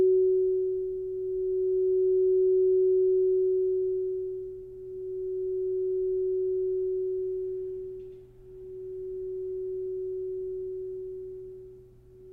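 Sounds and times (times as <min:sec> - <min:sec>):
crystal singing bowl sustaining a pure mid-pitched tone: 0:00.0 - 0:12.3
faint low hum: 0:00.0 - 0:12.3.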